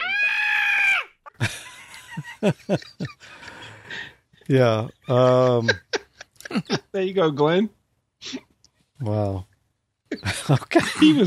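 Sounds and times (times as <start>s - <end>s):
high-pitched girlish scream sound effect: 0.0s - 1.2s
laughter: 1.4s - 7.0s, 10.1s - 11.2s
speech: 2.4s - 5.8s, 6.6s - 9.5s, 10.1s - 11.2s.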